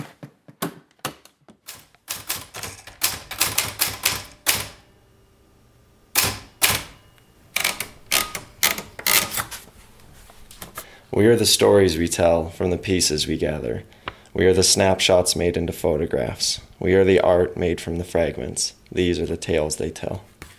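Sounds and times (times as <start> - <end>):
manual typewriter typing on a little kitchen table: 1.6 - 4.8, 6.2 - 9.6
speech: 11.2 - 20.3.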